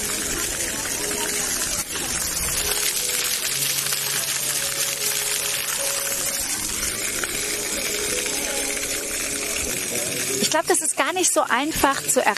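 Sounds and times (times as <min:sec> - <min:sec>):
faint voices murmuring: 0:00.0 - 0:10.6
water play fountain splashing at the Obertrave in Lübeck Germany: 0:00.0 - 0:12.3
speech: 0:10.6 - 0:12.3.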